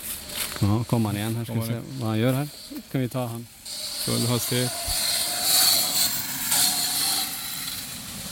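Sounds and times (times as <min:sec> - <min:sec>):
speech: 0:00.6 - 0:05.0
motorcycle driving past: 0:03.7 - 0:08.3.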